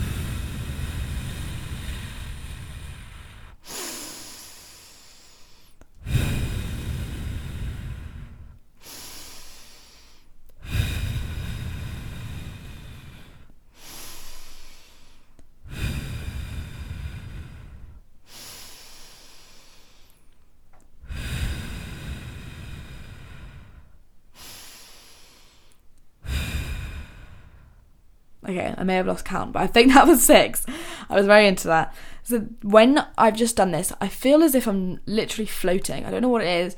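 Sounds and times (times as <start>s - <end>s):
slow deep breathing in and out through a straw: 0.0s - 20.4s, 21.0s - 27.8s, 30.7s - 31.1s
speech: 28.5s - 36.7s.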